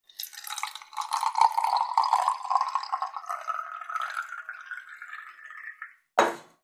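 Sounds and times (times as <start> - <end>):
water in a flask: 0.0 - 6.2
flask of water put on the table: 6.2 - 6.6.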